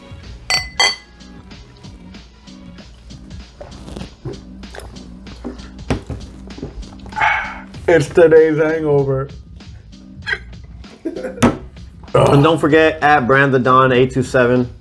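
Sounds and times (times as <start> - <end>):
beer glasses clinking in a toast: 0.5 - 1.2
speech: 7.9 - 9.4, 12.3 - 14.8.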